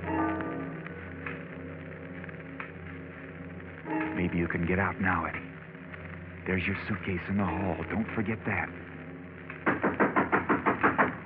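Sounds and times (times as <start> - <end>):
faint low hum: 0.0 - 11.2
speech: 4.2 - 5.5, 6.4 - 8.9
firm knocking on a door: 9.6 - 11.2.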